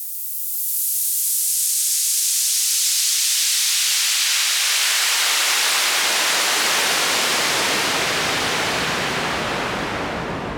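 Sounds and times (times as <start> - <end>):
waterfall: 2.2 - 10.4.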